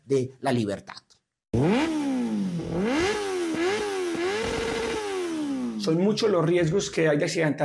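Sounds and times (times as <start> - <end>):
speech: 0.1 - 1.9, 5.8 - 7.6
rattly buzz: 1.6 - 5.8
motorcycle engines revving as bikes pass on a street: 1.6 - 6.1.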